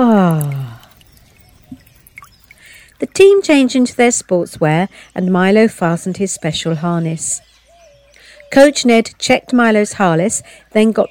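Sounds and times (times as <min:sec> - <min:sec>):
water trickling in a small stream as toes are dipped: 0:00.0 - 0:06.6
speech: 0:03.2 - 0:07.5, 0:08.5 - 0:11.0.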